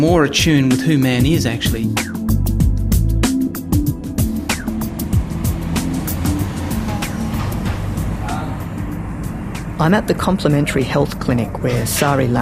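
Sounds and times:
speech: 0.0s - 2.2s, 9.8s - 12.3s
low traffic rumble: 2.7s - 12.3s.

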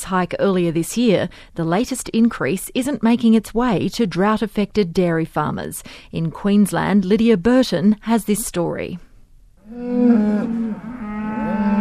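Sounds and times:
speech: 0.0s - 9.1s, 9.7s - 11.0s
dairy cows mooing at milking time on a drought-affected farm in southern Queensland: 9.6s - 11.8s.

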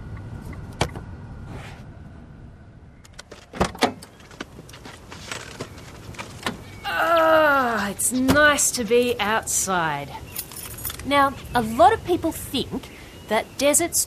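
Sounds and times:
car engine rumbling while parking: 0.0s - 12.9s
speech: 8.1s - 10.4s, 11.0s - 14.0s.

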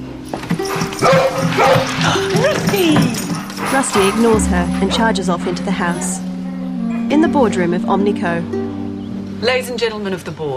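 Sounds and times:
Labrador barking: 0.6s - 6.2s
speech: 1.0s - 6.3s, 7.1s - 8.6s, 9.4s - 10.5s.

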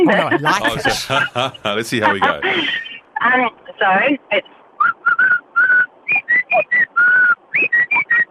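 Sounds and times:
laughter: 0.0s - 3.0s
speech: 0.1s - 5.4s, 6.1s - 8.2s
bird whistling from a treetop: 4.8s - 8.2s.

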